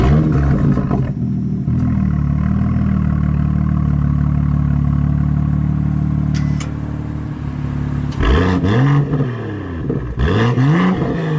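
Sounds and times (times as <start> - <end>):
BMW M2 Coupe engine roaring and revving: 0.0 - 11.3.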